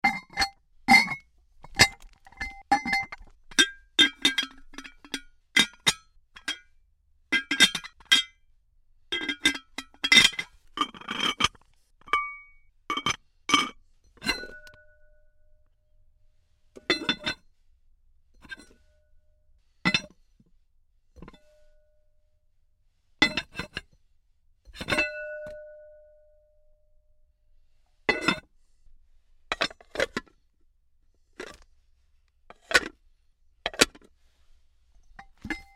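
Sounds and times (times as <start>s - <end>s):
ceramic pot lids on and off various jars and containers: 0.0s - 6.7s, 7.3s - 8.3s, 9.1s - 15.2s, 16.8s - 17.4s, 23.2s - 23.8s, 24.7s - 26.3s, 28.1s - 28.5s, 29.5s - 30.3s, 31.4s - 31.6s, 32.5s - 33.0s, 33.7s - 34.1s, 35.2s - 35.7s.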